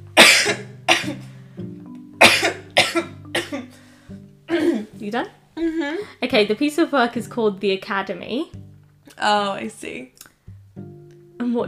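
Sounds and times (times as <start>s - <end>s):
person having a coughing fit: 0.2s - 1.2s, 2.2s - 3.8s, 4.5s - 4.9s
speech: 5.0s - 10.2s.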